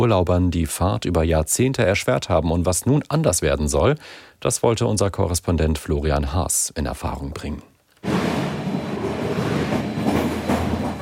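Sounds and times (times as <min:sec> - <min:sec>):
speech: 0:00.0 - 0:08.3
train rolling on rails heard from inside the carriage: 0:08.0 - 0:11.0.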